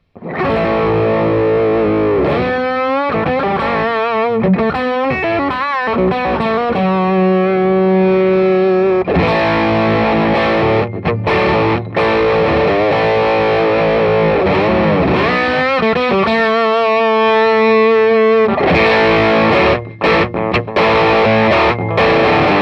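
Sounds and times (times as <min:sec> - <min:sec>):
electric guitar through Vox MV50 amp at full gain: 0:00.0 - 0:22.6.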